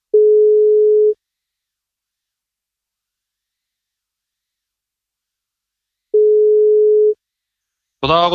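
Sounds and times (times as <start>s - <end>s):
phone ringback tone on outgoing call: 0.2s - 1.2s, 6.2s - 7.2s
speech: 8.0s - 8.3s.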